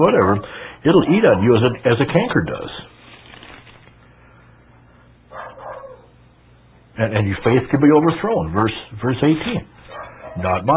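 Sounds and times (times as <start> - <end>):
speech: 0.0 - 2.9, 7.0 - 9.8, 10.4 - 10.7
low steady hum: 0.0 - 10.7
dog barking: 0.2 - 1.8, 5.3 - 6.1, 9.8 - 10.6.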